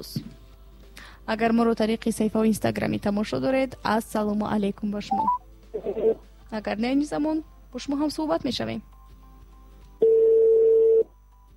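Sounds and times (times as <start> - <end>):
speech: 0.0 - 0.3, 1.3 - 8.9
telephone tone as a call is placed for a radio phone-in: 5.1 - 5.4, 10.0 - 11.2.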